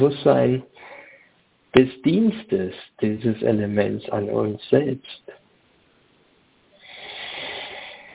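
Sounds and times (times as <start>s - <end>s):
speech: 0.0s - 0.8s, 1.7s - 5.4s
deep breath drawn in during a guided breathing meditation: 0.8s - 1.4s, 6.8s - 8.1s.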